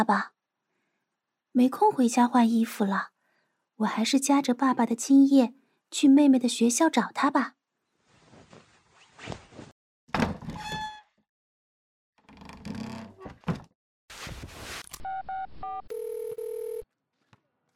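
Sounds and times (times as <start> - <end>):
speech: 0.0 - 0.3, 1.6 - 3.1, 3.8 - 7.6, 9.2 - 9.4
outgoing phone call electronic ringing tones: 15.1 - 16.9.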